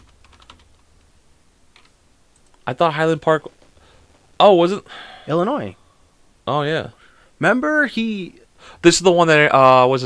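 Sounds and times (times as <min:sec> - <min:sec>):
faint typing on a computer keyboard: 0:00.0 - 0:00.8
low steady hiss: 0:00.0 - 0:10.0
speech: 0:02.7 - 0:03.6, 0:04.4 - 0:05.8, 0:06.5 - 0:10.0.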